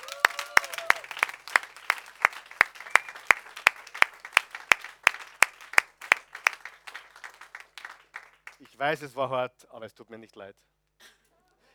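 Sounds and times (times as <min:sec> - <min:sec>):
audience applauding: 0:00.0 - 0:08.8
speech: 0:08.8 - 0:10.8.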